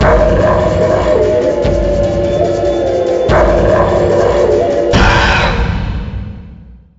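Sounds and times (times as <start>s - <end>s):
taiko drum background music from a handheld game: 0.0s - 6.6s.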